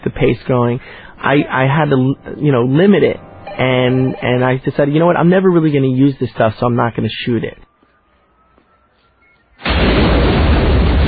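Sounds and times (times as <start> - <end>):
speech: 0.2 - 7.7
building being blown up with explosives: 9.6 - 11.0
roaring rumble of debris from building demolition: 9.6 - 11.0.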